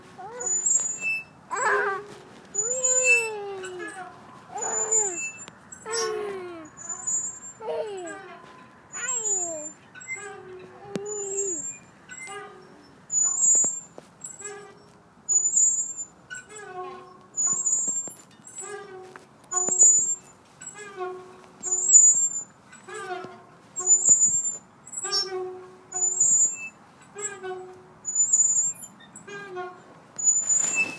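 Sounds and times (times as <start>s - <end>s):
city sounds: 0.0s - 30.9s
swings creaking: 0.0s - 30.9s
child laughing: 5.9s - 6.7s, 7.6s - 8.3s.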